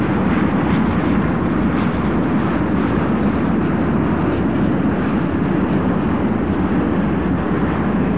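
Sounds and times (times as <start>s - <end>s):
engine heard from ground: 0.0s - 8.1s.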